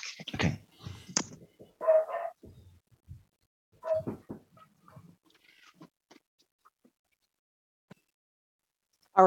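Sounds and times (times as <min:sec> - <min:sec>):
dog barking outside in pouring rain: 0:01.8 - 0:02.4, 0:03.8 - 0:04.2.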